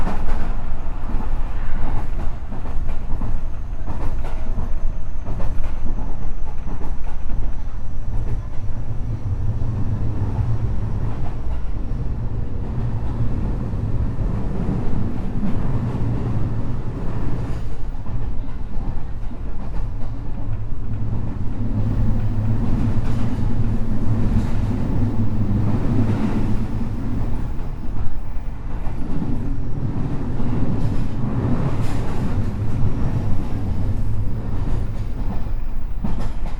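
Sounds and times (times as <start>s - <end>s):
electric commuter train rumbling in motion: 0.0s - 36.5s.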